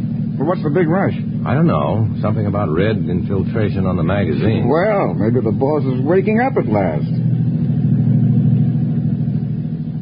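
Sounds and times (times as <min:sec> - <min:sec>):
car engine rumbling inside a moving vehicle: 0:00.0 - 0:10.0
speech: 0:00.4 - 0:07.4.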